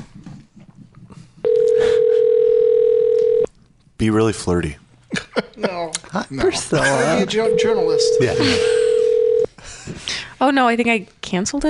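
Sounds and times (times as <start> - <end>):
telephone dial tone while dialing a call: 1.5 - 3.5, 7.6 - 9.5
speech: 4.0 - 4.8, 5.6 - 8.8, 10.4 - 11.6.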